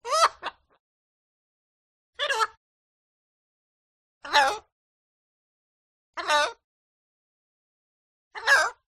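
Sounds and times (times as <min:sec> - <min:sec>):
parrot: 0:00.0 - 0:00.8, 0:02.2 - 0:02.6, 0:04.2 - 0:04.8, 0:06.1 - 0:06.7, 0:08.3 - 0:08.9.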